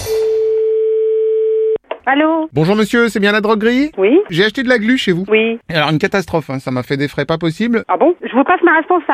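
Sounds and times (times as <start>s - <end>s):
telephone ringing tone: 0.1s - 1.8s
speech: 2.1s - 9.1s.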